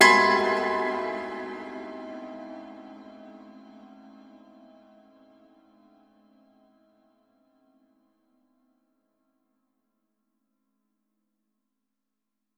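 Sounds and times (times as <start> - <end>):
sinister cinematic impact chord: 0.0 - 5.0.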